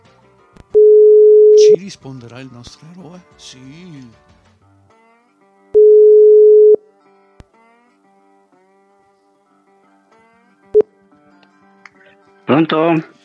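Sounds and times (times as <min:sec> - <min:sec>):
ringback tone beep of a mobile call ringing out: 0:00.8 - 0:01.8, 0:05.8 - 0:06.8
speech: 0:01.7 - 0:04.3, 0:12.6 - 0:13.1.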